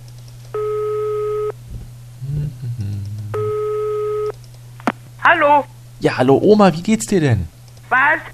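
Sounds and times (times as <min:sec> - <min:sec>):
electronic ringback tones on an open phone line: 0:00.6 - 0:01.5, 0:03.4 - 0:04.3
speech: 0:05.3 - 0:08.3.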